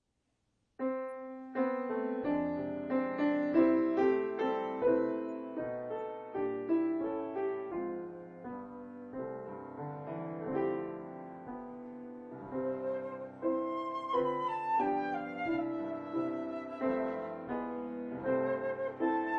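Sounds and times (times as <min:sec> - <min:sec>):
piano: 0:00.8 - 0:19.3
Christmas song on flute: 0:12.5 - 0:19.3.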